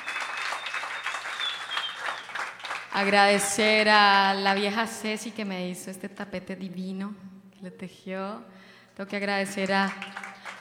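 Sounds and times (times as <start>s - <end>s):
audience applause at a tribute concert: 0.0s - 3.5s, 10.0s - 10.5s
speech: 3.0s - 10.5s.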